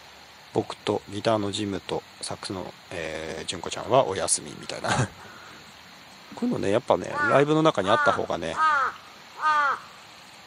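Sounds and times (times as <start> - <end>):
speech: 0.6 - 5.4, 6.3 - 8.7
laughter: 4.8 - 5.2
crow cawing: 7.0 - 10.0.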